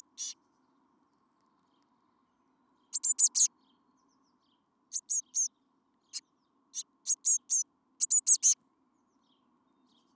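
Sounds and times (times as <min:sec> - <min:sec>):
Eurasian blue tit Cyanistes caeruleus bright buzzy call notes: 0:00.0 - 0:00.4, 0:03.0 - 0:03.5, 0:04.9 - 0:05.5, 0:07.1 - 0:08.6.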